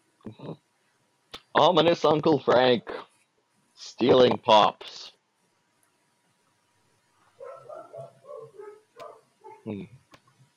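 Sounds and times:
speech: 1.6 - 3.1, 3.8 - 5.1, 9.6 - 10.0
puppies yipping and whimpering: 7.4 - 9.7.

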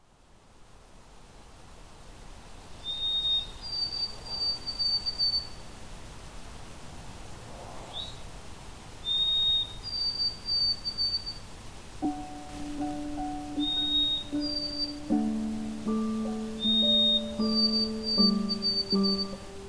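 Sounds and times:
white-throated sparrow whistling song: 2.8 - 5.6, 9.0 - 19.6
soft low sustained musical tones: 12.0 - 19.6.

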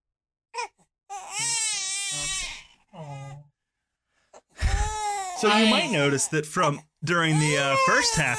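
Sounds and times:
infant crying with a high wavering wail: 0.6 - 3.3, 4.6 - 8.3
speech: 5.4 - 8.3.

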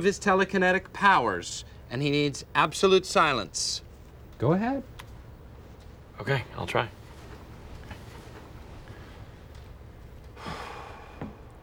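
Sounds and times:
speech: 0.0 - 3.8, 4.4 - 4.9, 6.2 - 7.0
deep breath in an office: 10.4 - 11.6.

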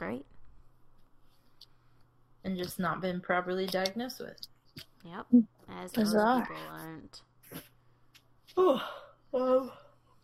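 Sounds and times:
speech: 2.5 - 7.7, 8.5 - 9.8
person yawning: 8.5 - 10.0.

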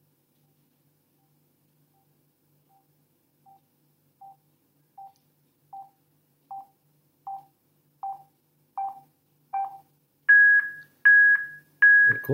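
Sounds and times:
short electronic beeps from a phone speaker: 9.6 - 12.3.

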